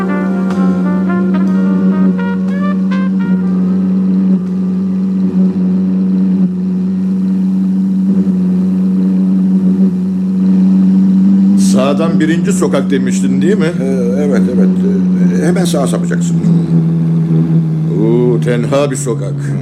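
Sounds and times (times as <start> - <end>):
car engine humming while driving: 0.0 - 19.5
speech: 12.0 - 17.0, 18.4 - 19.5.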